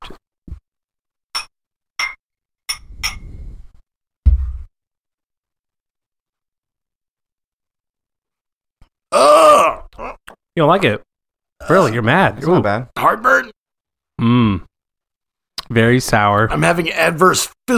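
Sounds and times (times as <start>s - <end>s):
glasses clinking together in a toast: 1.4s - 3.3s
person groaning loudly: 9.1s - 10.2s, 14.2s - 14.7s
speech: 9.1s - 13.6s, 14.2s - 14.7s, 15.7s - 17.7s.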